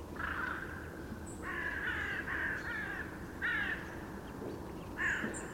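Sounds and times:
Carrion crow Corvus corone cawing: 0:00.2 - 0:03.8, 0:05.0 - 0:05.4.

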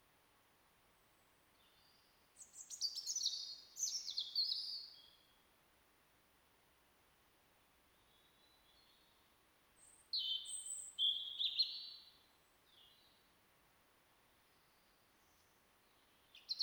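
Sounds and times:
European robin Erithacus rubecula song: 0:01.6 - 0:05.3, 0:09.8 - 0:13.3, 0:14.5 - 0:16.6.

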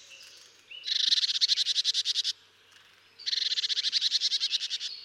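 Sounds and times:
marsh tit Poecile palustris calling: 0:00.0 - 0:02.3, 0:03.2 - 0:04.9.

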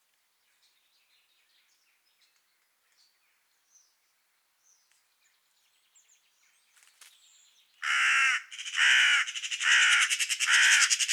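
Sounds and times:
Carrion crow Corvus corone cawing: 0:07.8 - 0:11.1.

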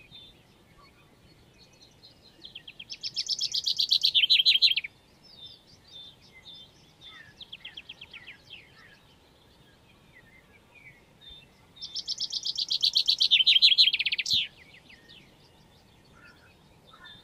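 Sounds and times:
common chaffinch song Fringilla coelebs: 0:00.0 - 0:17.2.

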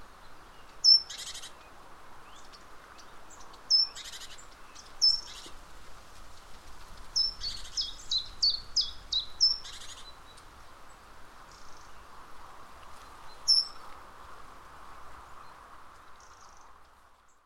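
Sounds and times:
quiet background hiss: 0:00.0 - 0:17.4
Parus major great tit calls: 0:00.6 - 0:05.6, 0:07.2 - 0:10.4, 0:13.3 - 0:13.8.

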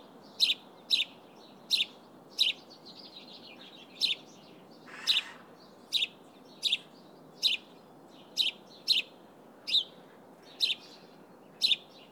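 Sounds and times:
house sparrow chirps: 0:00.3 - 0:01.1, 0:01.7 - 0:09.1, 0:10.5 - 0:11.0, 0:11.6 - 0:12.0.

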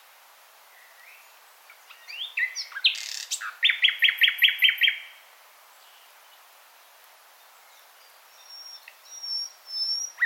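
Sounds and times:
common nightingale Luscinia megarhynchos singing: 0:00.6 - 0:10.2.

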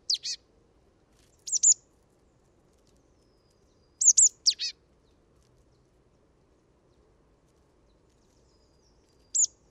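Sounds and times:
marsh tit Poecile palustris calls: 0:00.1 - 0:00.4, 0:01.5 - 0:01.8, 0:04.0 - 0:04.7, 0:09.3 - 0:09.5.

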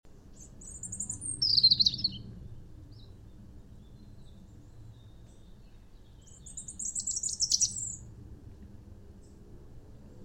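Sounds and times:
soft low background noise: 0:00.1 - 0:10.2
European robin Erithacus rubecula song: 0:00.3 - 0:02.3, 0:02.9 - 0:08.1.

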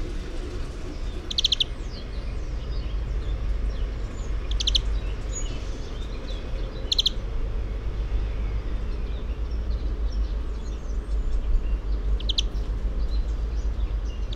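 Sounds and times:
loud low rumble: 0:00.0 - 0:14.3
European greenfinch Chloris chloris calls: 0:00.1 - 0:07.2, 0:12.1 - 0:14.3.

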